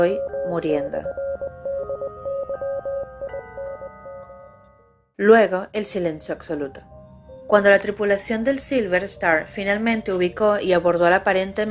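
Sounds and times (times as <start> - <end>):
speech: 0.0 - 1.4, 5.2 - 6.9, 7.5 - 11.6
Morse code beeps over radio: 0.0 - 4.5.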